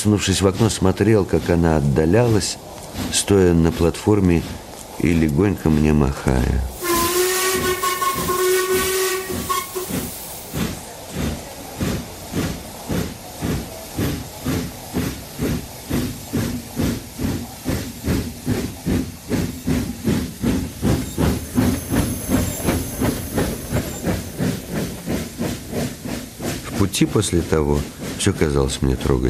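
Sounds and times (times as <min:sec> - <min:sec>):
speech: 0:00.0 - 0:06.7, 0:27.0 - 0:29.2
steam locomotive chuffing pulling away from a station platform: 0:00.0 - 0:29.2
steam train whistle: 0:06.8 - 0:10.2.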